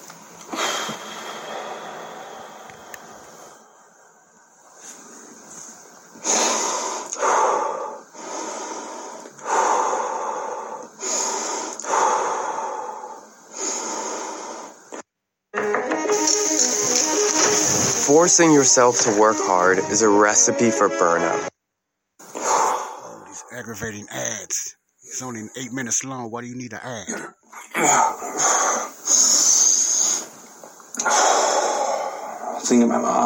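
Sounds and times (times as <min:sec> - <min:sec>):
man breathing heavily during a panic attack: 0:00.5 - 0:15.0, 0:16.2 - 0:19.7, 0:22.2 - 0:23.7, 0:27.8 - 0:32.6
speech: 0:18.1 - 0:21.5, 0:23.7 - 0:24.6, 0:25.2 - 0:28.8, 0:32.7 - 0:33.2.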